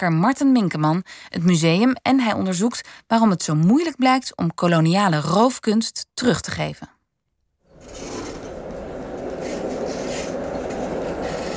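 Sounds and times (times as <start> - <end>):
speech: 0.0 - 7.0
tram rumbling along its rails: 7.7 - 11.5.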